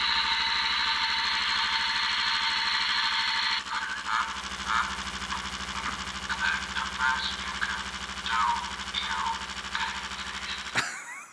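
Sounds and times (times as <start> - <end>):
vibrating electric chair toy figure buzzing: 0.0 - 11.2
toy figure recorded voice speaking: 3.6 - 10.7
toy figure recorded voice laughing: 10.2 - 11.3.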